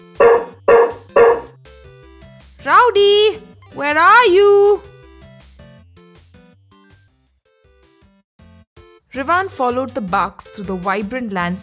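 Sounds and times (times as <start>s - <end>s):
dog barking: 0.0s - 1.6s
speech: 2.9s - 4.9s, 9.2s - 11.6s.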